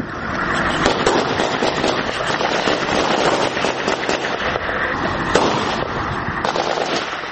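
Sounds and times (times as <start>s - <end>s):
gunfire at an Afghan forces post in a civilian house: 0.7s - 7.3s.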